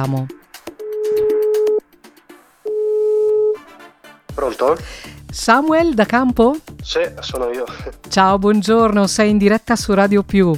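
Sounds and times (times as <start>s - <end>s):
speech: 0.0s - 0.4s, 4.4s - 10.5s
telephone tone on an outgoing call: 0.8s - 1.8s, 2.7s - 3.6s.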